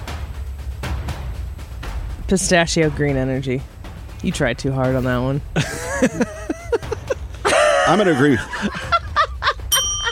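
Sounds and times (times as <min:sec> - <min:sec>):
speech: 0:02.3 - 0:06.4, 0:07.9 - 0:09.0
laughter: 0:05.6 - 0:10.1
bell rung during a guessing game: 0:09.7 - 0:10.1.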